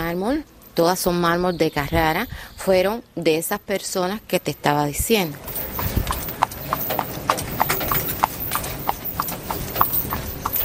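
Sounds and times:
street noise in Cienfuegos: 0:00.0 - 0:10.6
speech: 0:00.1 - 0:05.6
cart wheels rumbling on pavement: 0:05.1 - 0:10.6
hooves of a horse pulling a small cart on pavement in Cienfuegos: 0:05.3 - 0:10.6.

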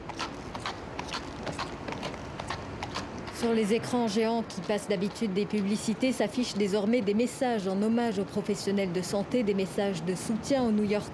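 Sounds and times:
horse hooves clip-clopping on hard pavement: 0:00.0 - 0:06.8
speech: 0:03.4 - 0:11.1.

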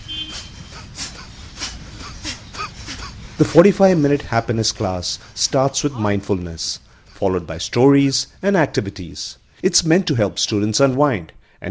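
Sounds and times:
students breathing quietly in a classroom: 0:00.2 - 0:04.2, 0:05.2 - 0:05.4, 0:06.8 - 0:07.2, 0:11.4 - 0:11.6
speech: 0:03.4 - 0:11.6.

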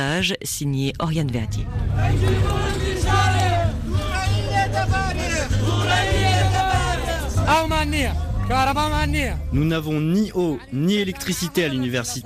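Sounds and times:
speech: 0:00.0 - 0:03.5, 0:07.5 - 0:12.2
low rumbling hum: 0:00.5 - 0:08.4
crowd of protesting students chanting and shouting at a demonstration in Al-Abja: 0:01.5 - 0:12.2.

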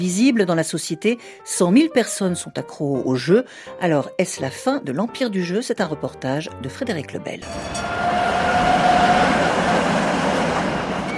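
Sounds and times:
speech: 0:00.0 - 0:08.2
thin high metallic tram wheel squeal: 0:07.4 - 0:09.5
tram rumbling along its rails on a street in Prague: 0:07.4 - 0:11.1.

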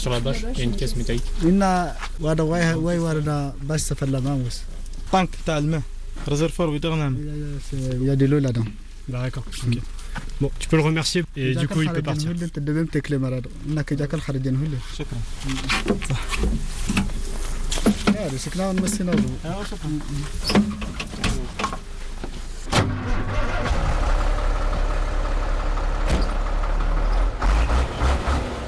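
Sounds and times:
speech: 0:00.0 - 0:17.2, 0:17.9 - 0:21.8
heavy truck engine starting and rumbling: 0:22.7 - 0:28.6.

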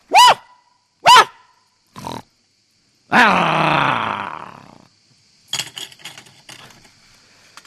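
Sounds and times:
person imitating a barking dog with woofs: 0:00.0 - 0:01.4, 0:03.1 - 0:04.8.

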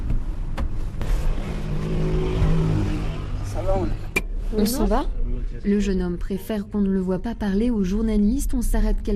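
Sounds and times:
car engine rumbling while pulling away and accelerating: 0:00.8 - 0:05.0
speech: 0:04.6 - 0:09.1.

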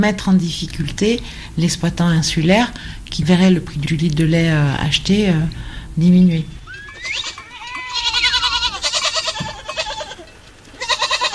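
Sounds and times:
speech: 0:00.0 - 0:07.4
several goats bleating: 0:06.6 - 0:11.3.

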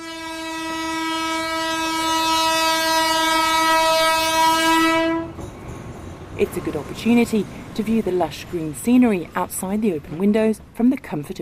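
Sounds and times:
passenger train horn: 0:00.0 - 0:05.4
passenger train running on tracks: 0:00.0 - 0:11.3
speech: 0:06.4 - 0:11.3.

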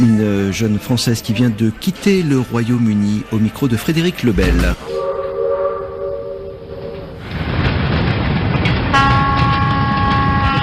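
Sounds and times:
speech: 0:00.0 - 0:05.1
Turkish long-distance passenger train rolling: 0:03.5 - 0:10.6
Turkish long-distance passenger train horn: 0:04.5 - 0:07.2, 0:08.9 - 0:10.6.

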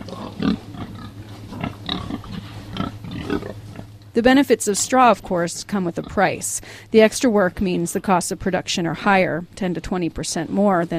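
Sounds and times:
pigs snuffling and grunting while rooting around in hay: 0:00.0 - 0:03.9
steady low barn hum: 0:00.0 - 0:10.9
speech: 0:04.2 - 0:10.9.

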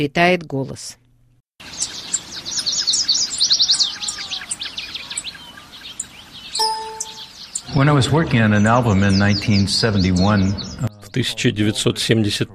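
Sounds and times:
speech: 0:00.0 - 0:01.0, 0:07.7 - 0:12.5
bird of paradise and lyrebird chirps, whistles and trills during a mating display: 0:01.6 - 0:10.8.

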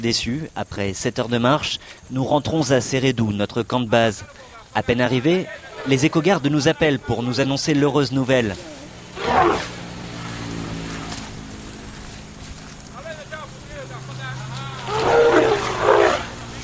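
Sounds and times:
speech: 0:00.0 - 0:08.8
elephants rumbling at a road edge near a village: 0:08.4 - 0:16.6.

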